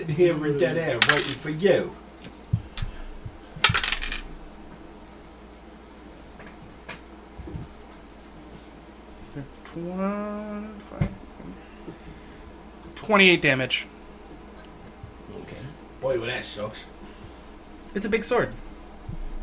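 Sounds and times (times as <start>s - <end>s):
speech: 0.0s - 2.4s, 9.8s - 11.1s, 13.1s - 14.0s, 16.0s - 16.9s, 18.0s - 18.6s
dice clattering across a tabletop: 1.0s - 1.5s, 3.6s - 4.2s
person murmuring: 9.4s - 11.0s.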